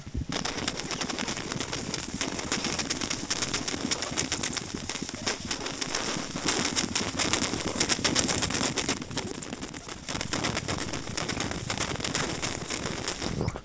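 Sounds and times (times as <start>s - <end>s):
water bubbles slurping in a bong: 0.0s - 13.6s.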